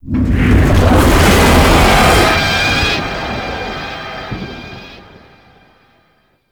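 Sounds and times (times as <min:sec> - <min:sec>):
dragon passing by: 0:00.0 - 0:03.7.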